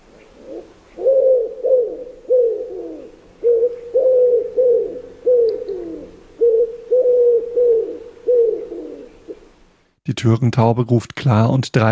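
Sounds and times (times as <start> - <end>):
common wood pigeon cooing: 0.0 - 9.5
speech: 10.2 - 11.9.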